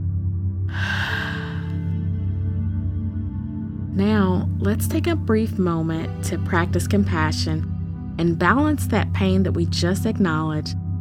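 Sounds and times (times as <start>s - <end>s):
steady low musical drone: 0.0s - 10.9s
strong exhale after a deep breath: 0.7s - 1.8s
speech: 4.0s - 10.8s.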